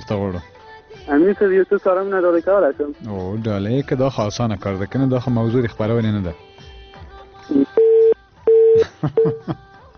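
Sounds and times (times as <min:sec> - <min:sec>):
speech: 0:00.1 - 0:06.5, 0:08.8 - 0:09.7
telephone busy tone after a call is cut off: 0:07.5 - 0:09.3.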